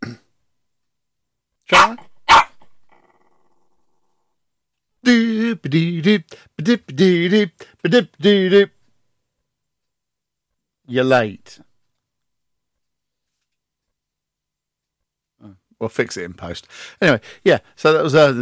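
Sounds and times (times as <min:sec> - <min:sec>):
dog barking: 0:01.7 - 0:02.8
dog growling and grumbling: 0:02.8 - 0:03.8
speech: 0:05.6 - 0:08.8, 0:10.9 - 0:11.7, 0:15.4 - 0:18.4.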